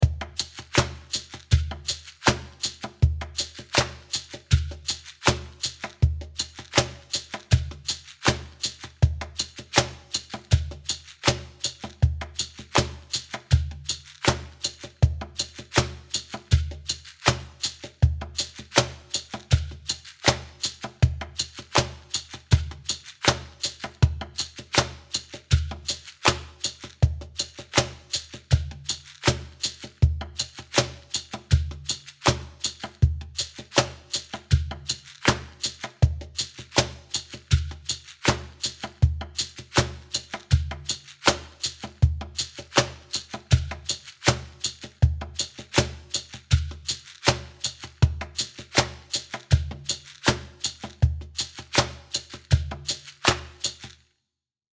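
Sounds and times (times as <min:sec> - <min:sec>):
drum groove: 0:00.0 - 0:54.0.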